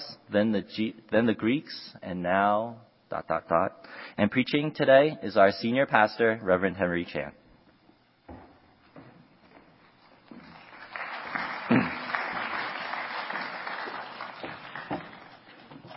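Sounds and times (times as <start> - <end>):
speech: 0.3 - 7.4
crowd clapping from many hands: 10.4 - 15.6.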